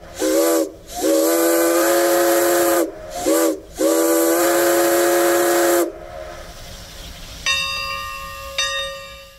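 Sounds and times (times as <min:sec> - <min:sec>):
steam locomotive whistle: 0:00.0 - 0:06.5
steam locomotive hissing: 0:00.0 - 0:08.6
bell ringing: 0:07.5 - 0:09.3.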